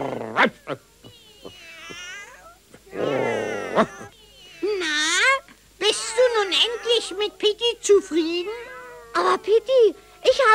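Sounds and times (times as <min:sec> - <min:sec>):
speech: 0:00.0 - 0:00.9
many cats on a garden fence meowing and caterwauling: 0:00.7 - 0:05.1, 0:06.0 - 0:07.5, 0:08.1 - 0:10.4.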